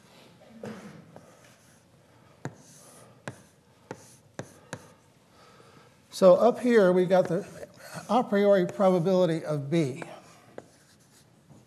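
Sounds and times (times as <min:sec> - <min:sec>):
marker or chalk strokes on a lecture board: 0:02.4 - 0:05.0, 0:07.1 - 0:09.0, 0:10.5 - 0:11.3
speech: 0:06.2 - 0:10.1.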